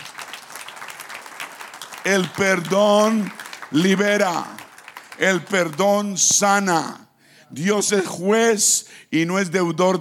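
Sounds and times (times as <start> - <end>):
crowd applauding: 0.0 - 6.3
speech: 2.0 - 4.6, 5.2 - 9.9.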